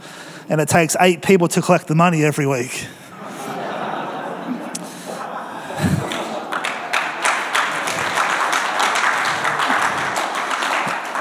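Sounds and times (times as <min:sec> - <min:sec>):
people chuckling: 0:00.0 - 0:11.2
speech: 0:00.5 - 0:03.0
murmur of voices: 0:01.8 - 0:11.2
church audience applause: 0:03.1 - 0:11.2.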